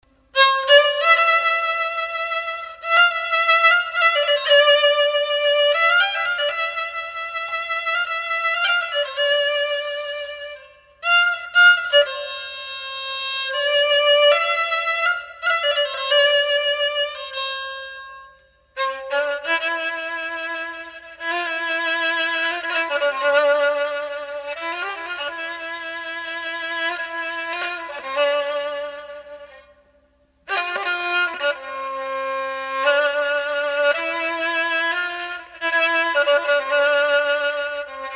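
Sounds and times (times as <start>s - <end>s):
kamancheh playing: 0.0s - 38.1s.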